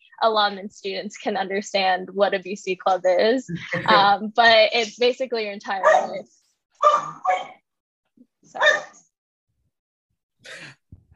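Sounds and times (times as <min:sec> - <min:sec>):
speech: 0:00.2 - 0:07.6, 0:08.4 - 0:09.0
dog barking excitedly: 0:05.8 - 0:06.2, 0:06.8 - 0:07.6, 0:08.6 - 0:09.0.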